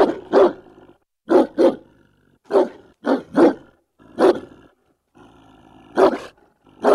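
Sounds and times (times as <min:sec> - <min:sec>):
German shepherd dog barking: 0:00.0 - 0:01.9, 0:02.5 - 0:04.6, 0:05.9 - 0:06.9.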